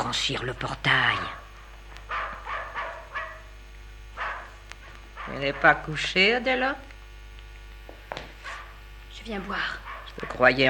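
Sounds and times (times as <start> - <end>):
speech: 0.0 - 1.4, 5.3 - 6.9, 9.2 - 10.6
low steady hum: 0.0 - 10.6
dog barking: 1.2 - 3.6, 4.2 - 6.0, 8.4 - 8.8, 9.8 - 10.6.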